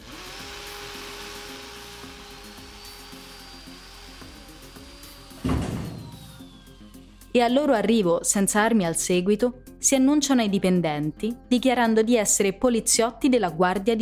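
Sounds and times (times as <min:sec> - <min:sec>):
jackhammer breaking through thick basement nuclear shelter wall: 0:00.0 - 0:06.8
speech: 0:07.4 - 0:14.0.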